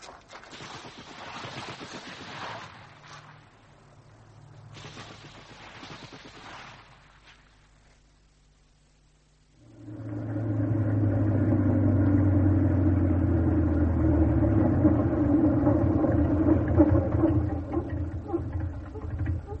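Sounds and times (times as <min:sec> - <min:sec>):
push-started car engine running: 0:09.6 - 0:19.5.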